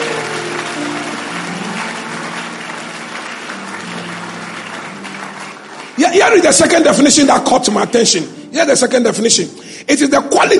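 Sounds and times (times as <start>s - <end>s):
audience applause: 0.0s - 7.2s
speech: 6.0s - 10.5s.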